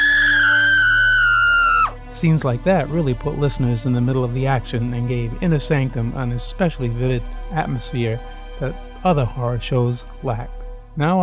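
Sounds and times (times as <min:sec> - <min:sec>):
man screaming in terror: 0:00.0 - 0:02.0
speech: 0:02.2 - 0:11.2.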